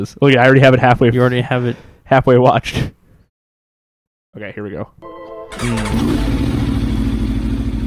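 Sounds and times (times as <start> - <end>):
speech: 0.0 - 3.0, 4.4 - 6.6
Aprilia RSV4 motorcycle engine with Akrapovic aftermarket exhaust revving: 5.5 - 7.8.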